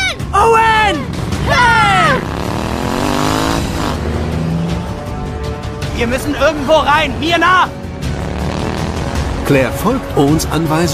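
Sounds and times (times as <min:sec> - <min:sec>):
motorcycle engine revving: 0:00.6 - 0:05.8, 0:07.8 - 0:09.8
speech: 0:06.0 - 0:07.8, 0:09.5 - 0:10.9.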